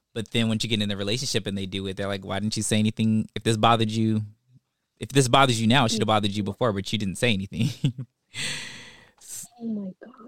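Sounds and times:
speech: 0.2s - 4.4s, 5.0s - 8.8s, 9.6s - 10.2s
loud breathy gasp from a person: 8.4s - 9.5s.

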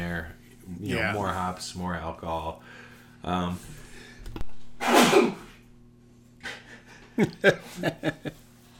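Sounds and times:
speech: 0.2s - 3.8s, 7.2s - 8.4s
sneeze: 4.8s - 5.6s.

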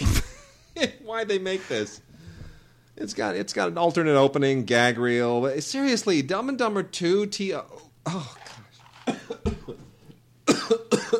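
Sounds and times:
speech: 0.8s - 2.1s, 3.0s - 8.5s
person coughing harshly: 8.1s - 9.9s, 10.5s - 11.1s.

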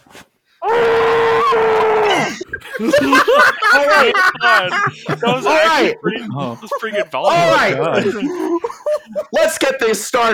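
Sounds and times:
muffled scream into a pillow: 0.6s - 2.3s
laughter: 1.6s - 10.3s
speech: 2.8s - 10.3s.

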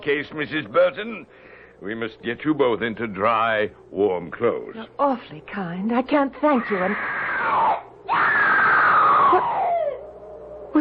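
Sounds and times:
speech: 0.0s - 8.4s
person screaming: 6.6s - 10.0s.

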